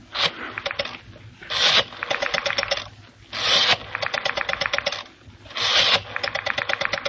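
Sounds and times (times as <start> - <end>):
rotary telephone dial winding: 0.2 - 7.0.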